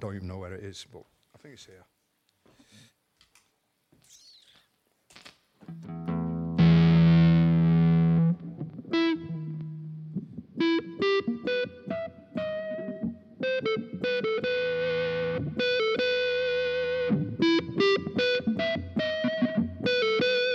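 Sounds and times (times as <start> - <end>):
speech: 0.1 - 2.0
smooth sustained electric guitar tone with violin-like quality: 5.6 - 20.5.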